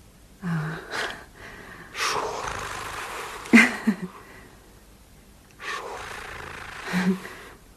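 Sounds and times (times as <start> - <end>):
heavy breathing with long breathy inhales and exhales: 0.4 - 4.6, 5.6 - 7.6.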